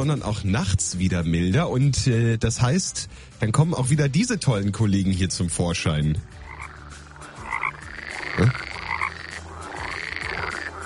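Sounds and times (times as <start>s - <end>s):
speech: 0.0s - 6.4s
frogs croaking in a dense outdoor chorus on a mild spring night: 6.2s - 10.8s.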